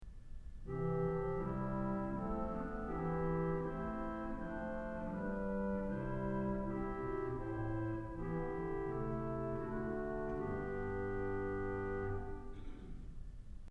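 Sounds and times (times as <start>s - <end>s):
corno playing in an auditorium: 0.7s - 12.6s.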